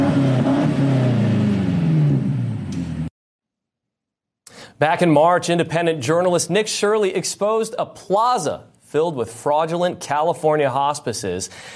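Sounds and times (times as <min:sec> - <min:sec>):
BMW M8 Competition car engine revving while driving: 0:00.0 - 0:03.1
speech: 0:04.8 - 0:11.7.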